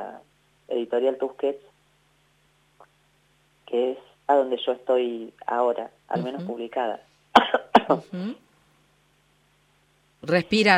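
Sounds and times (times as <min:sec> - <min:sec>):
speech: 0:00.2 - 0:01.7, 0:03.7 - 0:07.1, 0:07.9 - 0:08.4, 0:10.2 - 0:10.7
person coughing: 0:07.4 - 0:08.0.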